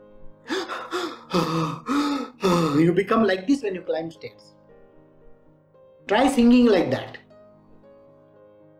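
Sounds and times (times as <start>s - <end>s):
person demonstrating shallow gasping breaths: 0.2s - 3.0s
speech: 1.3s - 4.6s, 6.1s - 7.2s.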